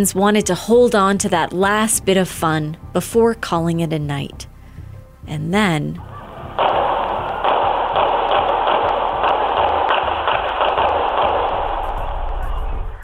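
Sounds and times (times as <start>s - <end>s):
speech: 0.0s - 4.5s, 5.3s - 6.7s
dense steady wash of loud noise: 6.1s - 13.0s
gunshots on the street outside a bar at closing time: 6.4s - 13.0s.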